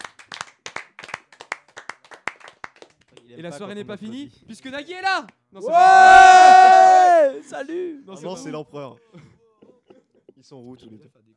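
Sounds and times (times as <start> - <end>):
small audience applause for the winner of a quiz game: 0.0 - 2.9
speech: 3.3 - 9.3, 10.4 - 11.2.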